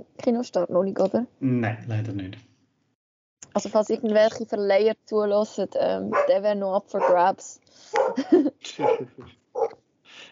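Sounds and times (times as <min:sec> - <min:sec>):
speech: 0:00.2 - 0:02.5, 0:03.6 - 0:09.4
dog barking and yelping: 0:06.1 - 0:06.4, 0:07.0 - 0:07.3, 0:07.9 - 0:08.2, 0:08.8 - 0:09.8
laughter: 0:08.0 - 0:09.3.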